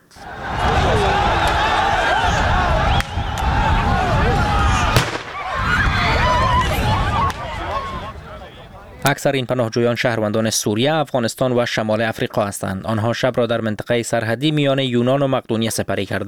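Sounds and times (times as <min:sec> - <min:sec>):
loud chaotic crowd of shouting voices at a border: 0:00.0 - 0:09.0
sharp gunshots at a border: 0:04.9 - 0:05.7
speech: 0:09.0 - 0:16.2.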